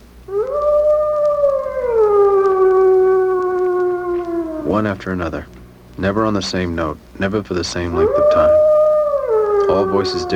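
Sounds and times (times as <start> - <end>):
wolf howling: 0.3 - 5.5, 7.8 - 10.3
speech: 4.8 - 8.6, 9.8 - 10.3.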